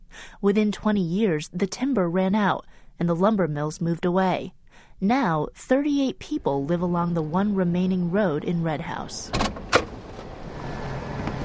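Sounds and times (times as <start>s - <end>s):
low steady rumble: 0.0s - 11.4s
speech: 0.4s - 9.6s
work truck door clunking: 9.3s - 10.4s, 11.2s - 11.4s.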